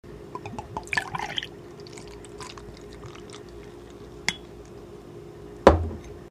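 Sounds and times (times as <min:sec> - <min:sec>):
serving, domestic sounds: 0:00.4 - 0:04.8.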